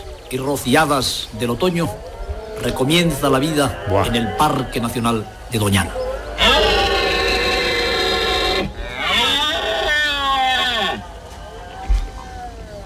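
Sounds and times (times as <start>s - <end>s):
speech: 0.3s - 6.0s
red deer stag bellowing during the rut: 2.4s - 5.2s, 5.8s - 11.1s
red deer stag trailing grunt: 2.5s - 4.8s.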